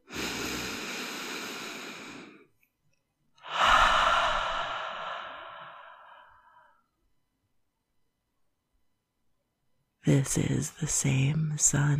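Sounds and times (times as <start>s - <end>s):
deep breathing in during a sunrise meditation: 0.0s - 2.5s, 3.4s - 6.8s
speech: 10.1s - 11.9s.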